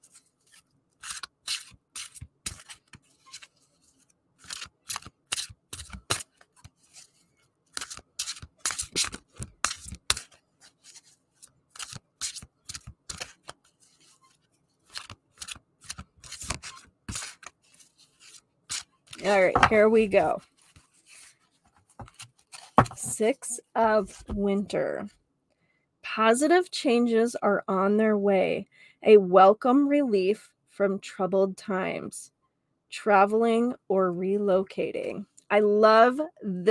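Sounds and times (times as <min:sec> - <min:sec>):
deck of tarot cards shuffled: 0:00.0 - 0:23.3
speech: 0:19.3 - 0:20.5, 0:23.2 - 0:25.2, 0:26.2 - 0:32.4, 0:33.0 - 0:36.6.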